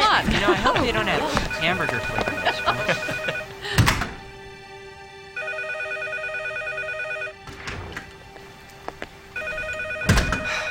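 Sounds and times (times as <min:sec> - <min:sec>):
laughter: 0:00.0 - 0:03.8
speech: 0:00.2 - 0:03.1
telephone ringing in electronic bursts: 0:01.7 - 0:03.5, 0:05.4 - 0:07.4, 0:09.4 - 0:10.6.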